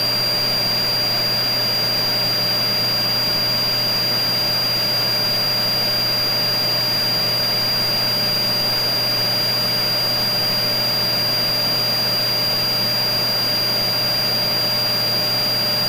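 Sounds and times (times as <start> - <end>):
vacuum cleaner running: 0.0 - 15.8.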